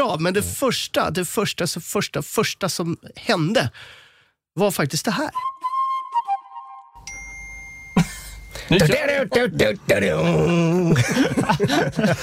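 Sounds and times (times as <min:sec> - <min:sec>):
speech: 0:00.0 - 0:04.0, 0:04.6 - 0:05.6, 0:08.7 - 0:12.2
mobile phone notification ping: 0:07.0 - 0:08.6
people chuckling: 0:10.6 - 0:12.2.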